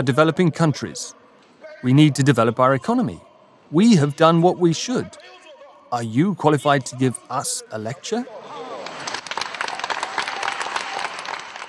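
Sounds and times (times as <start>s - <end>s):
speech: 0.0s - 1.2s, 1.8s - 8.6s
large audience applauding after a speech: 8.6s - 11.6s.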